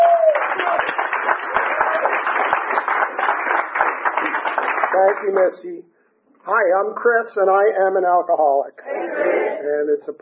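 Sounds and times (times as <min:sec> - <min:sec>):
room full of people applauding a speaker: 0:00.0 - 0:05.6
speech: 0:05.0 - 0:10.2.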